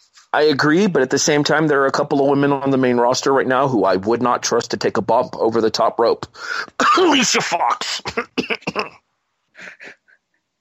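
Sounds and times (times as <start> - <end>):
speech: 0.3 - 9.0
person coughing harshly: 6.6 - 9.0
faint throat-clearing catch: 7.8 - 9.0.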